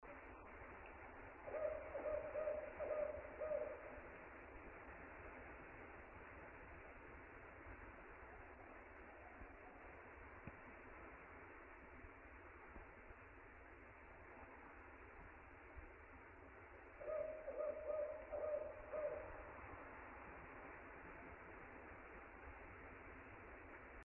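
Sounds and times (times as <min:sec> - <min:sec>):
Strix fulvescens: 0:01.5 - 0:03.8, 0:17.0 - 0:19.4.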